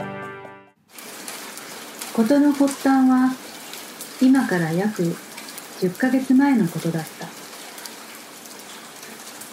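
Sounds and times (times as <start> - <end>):
steady rain beating on hydrangeas in front of an apartment building: 0.8 - 9.5
speech: 2.2 - 3.4, 4.2 - 5.2, 5.8 - 7.4.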